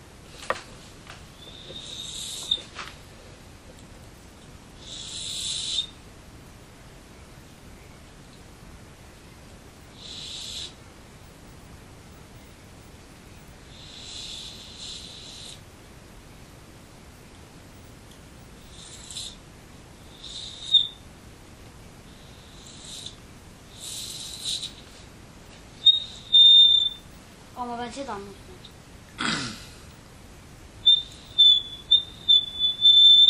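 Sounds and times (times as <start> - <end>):
steady hiss: 0.0 - 33.2
breathy high whistling tone from blown air: 1.4 - 2.7, 4.8 - 6.0, 18.7 - 19.4, 20.1 - 21.0, 22.1 - 25.0, 25.8 - 27.1, 30.9 - 33.2
speech: 27.8 - 28.4.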